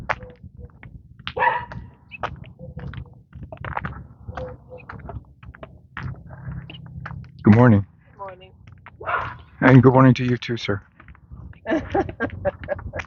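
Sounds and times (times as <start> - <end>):
steady low rumble of outdoor noise: 0.0 - 13.0
small dog being walked barking and yelping: 1.3 - 3.2, 4.3 - 5.1, 9.0 - 9.5
speech: 7.5 - 7.9, 9.6 - 10.9
laughter: 11.6 - 13.0.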